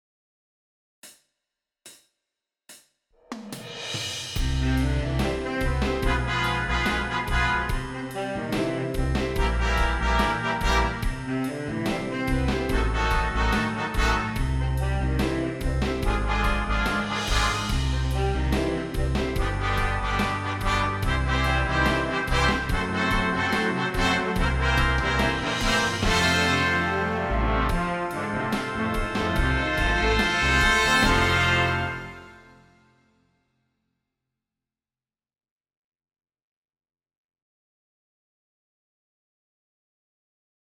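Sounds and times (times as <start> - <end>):
horns playing descending intervals in fifths: 4.4 - 32.6.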